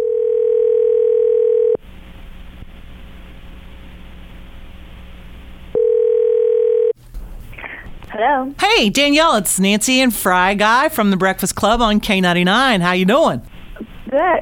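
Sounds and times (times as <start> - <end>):
telephone ringback tone while placing a call: 0.0 - 1.8, 5.8 - 7.0
speech: 8.2 - 13.5, 14.1 - 14.4.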